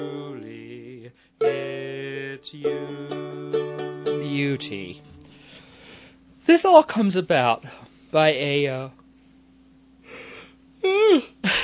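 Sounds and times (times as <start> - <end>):
speech: 2.4 - 3.0, 4.4 - 5.1, 6.5 - 9.0
person yawning: 10.1 - 11.4.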